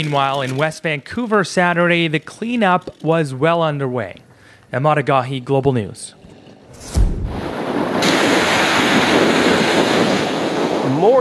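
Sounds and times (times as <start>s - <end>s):
speech: 0.0s - 6.2s, 11.0s - 11.2s
heavy wave slamming against a seawall with a deep boom: 6.8s - 10.6s
sustained roar of churning water and spray: 7.2s - 11.2s.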